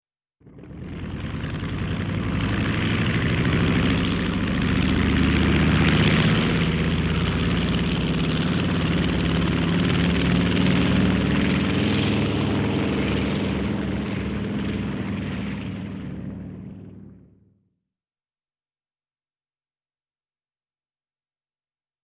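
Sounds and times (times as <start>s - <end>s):
twin prop airplane taking off: 0.4s - 17.5s.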